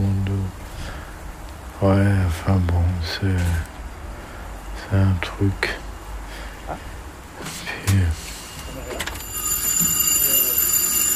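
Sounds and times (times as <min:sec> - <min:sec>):
speech: 0:01.8 - 0:03.7, 0:04.9 - 0:05.9, 0:06.7 - 0:08.2
stuck alarm bell ringing: 0:08.4 - 0:11.1.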